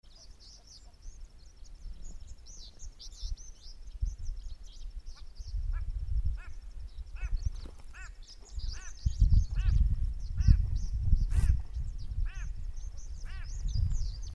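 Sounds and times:
Abyssinian lark: 5.2 - 13.8.

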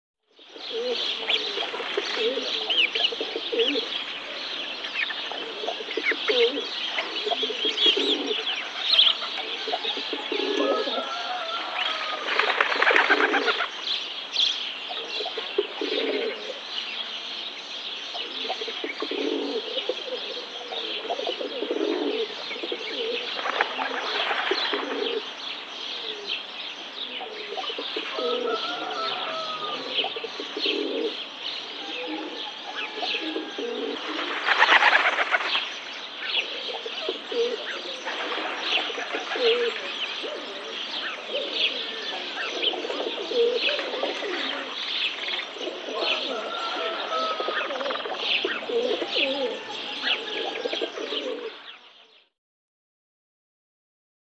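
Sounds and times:
rock pigeon: 0.6 - 13.9, 14.9 - 17.2, 18.1 - 25.3, 25.9 - 26.4, 27.0 - 52.2.

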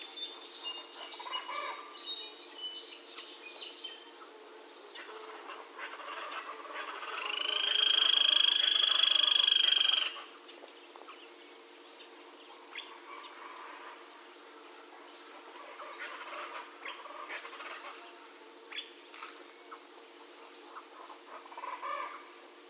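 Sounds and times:
grey-crowned woodpecker trill: 6.2 - 10.6.

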